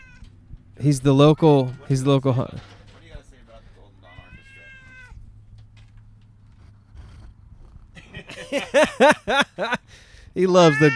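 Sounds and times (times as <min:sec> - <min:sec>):
cat meowing: 0:00.0 - 0:02.7, 0:03.4 - 0:05.6, 0:10.6 - 0:10.9
clatter: 0:00.0 - 0:10.3
cat purring: 0:00.0 - 0:10.9
speech: 0:00.8 - 0:02.7, 0:09.0 - 0:09.8, 0:10.4 - 0:10.9
laughter: 0:00.8 - 0:04.5, 0:08.0 - 0:10.9.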